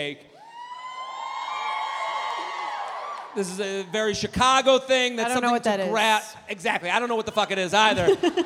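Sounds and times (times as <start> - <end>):
speech: 0.0 - 0.3, 3.4 - 8.4
large crowd of young women screaming and cheering: 0.4 - 3.9
laughter: 7.2 - 8.4.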